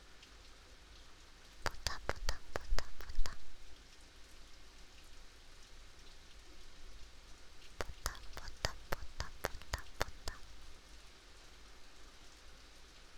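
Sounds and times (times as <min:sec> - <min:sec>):
gentle rain falling: 0:01.0 - 0:03.8, 0:07.2 - 0:11.1
sharp drip-like taps: 0:01.6 - 0:03.4, 0:07.8 - 0:10.8.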